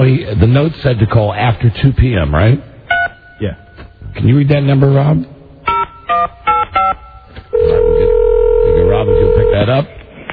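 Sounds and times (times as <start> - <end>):
speech: 0.0 - 2.7, 3.4 - 5.3, 9.0 - 10.0
continuous phone line tone: 6.5 - 9.8.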